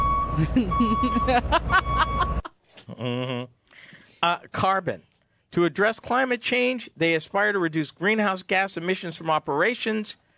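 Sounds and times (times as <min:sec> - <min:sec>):
truck reversing beeps: 0:00.0 - 0:02.5
laughter: 0:00.4 - 0:03.4
speech: 0:00.4 - 0:03.6, 0:04.2 - 0:10.2.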